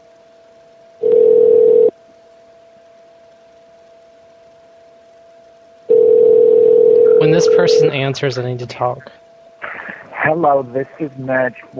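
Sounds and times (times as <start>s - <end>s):
faint continuous hum: 0.0s - 11.7s
electronic telephone ringing tone: 1.0s - 1.9s, 5.9s - 7.8s
speech: 7.2s - 9.2s, 10.2s - 11.7s.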